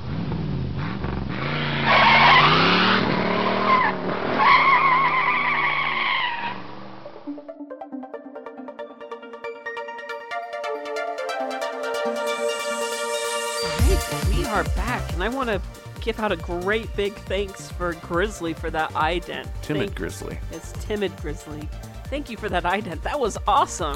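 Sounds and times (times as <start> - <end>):
car engine roaring: 0.0 - 7.3
tires skidding and squealing: 0.1 - 7.0
bright tonal electronic music: 7.2 - 23.9
speech: 15.2 - 23.9.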